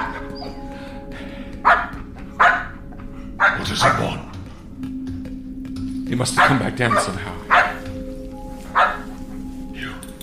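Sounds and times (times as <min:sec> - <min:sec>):
dog barking: 0:01.6 - 0:02.8, 0:03.4 - 0:04.2, 0:06.4 - 0:07.9, 0:08.7 - 0:09.2
speech: 0:03.7 - 0:04.2, 0:06.1 - 0:07.4.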